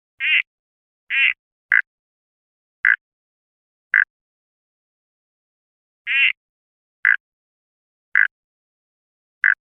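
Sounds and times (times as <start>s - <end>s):
Litoria phyllochroa Cotter River Frog calling: 0.2s - 0.5s, 1.1s - 1.9s, 6.1s - 6.4s, 7.0s - 7.2s, 8.2s - 8.4s, 9.4s - 9.6s.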